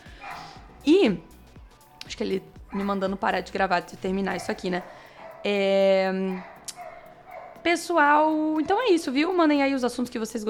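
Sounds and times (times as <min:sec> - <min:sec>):
dog letting out a short sharp bark: 0:00.1 - 0:00.8, 0:02.7 - 0:03.1, 0:04.2 - 0:07.8
speech: 0:00.8 - 0:01.3, 0:02.2 - 0:06.5, 0:07.6 - 0:10.4.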